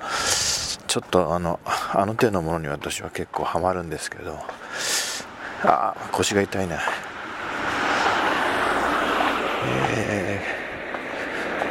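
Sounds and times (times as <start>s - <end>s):
wind buffeting: 0.0s - 11.6s
speech: 0.9s - 4.9s, 5.6s - 7.1s, 9.6s - 10.5s
low-flying jet airliner heading to land at Niigata Airport in Japan: 7.3s - 11.6s.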